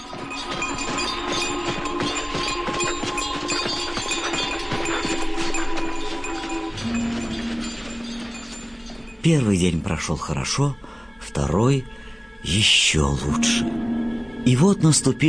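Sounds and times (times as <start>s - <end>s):
horse hooves clip-clopping: 0.0s - 9.9s
sleigh bells jingling: 0.0s - 10.3s
speech: 9.2s - 15.2s.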